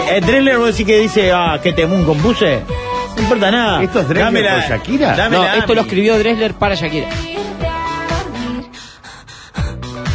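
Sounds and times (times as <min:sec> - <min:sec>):
music: 0:00.0 - 0:10.1
speech: 0:00.1 - 0:07.5
breathy rhythmic panting breaths in a song: 0:08.3 - 0:10.1.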